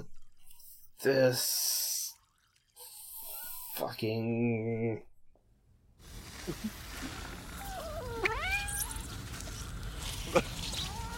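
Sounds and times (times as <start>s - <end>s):
steady noise: 0.0s - 11.1s
speech: 1.0s - 1.8s, 3.8s - 5.1s, 6.4s - 7.1s
female cat meowing: 7.6s - 9.2s, 10.7s - 11.1s.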